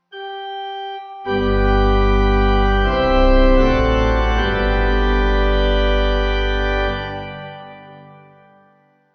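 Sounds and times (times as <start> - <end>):
Lutheran morning service amen on pipe organ: 1.3 - 8.2.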